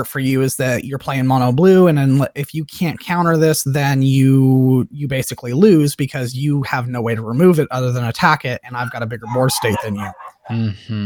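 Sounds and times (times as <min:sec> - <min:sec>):
speech: 0:00.0 - 0:11.0
dog barking: 0:09.2 - 0:10.5.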